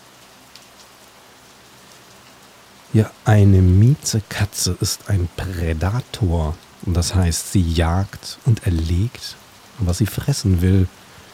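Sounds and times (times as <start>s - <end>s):
rain dripping outside: 0.0s - 11.3s
speech: 2.9s - 11.0s.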